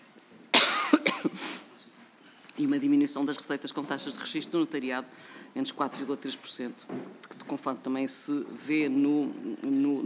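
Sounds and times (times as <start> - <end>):
dry irritative allergic cough: 0.5 - 1.6
speech: 2.6 - 10.0.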